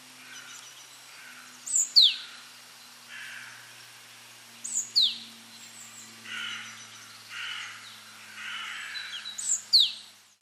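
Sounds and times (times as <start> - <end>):
great tit Parus major giving thin downslurred high whistles: 0.3 - 2.4, 4.6 - 7.7, 8.9 - 10.0.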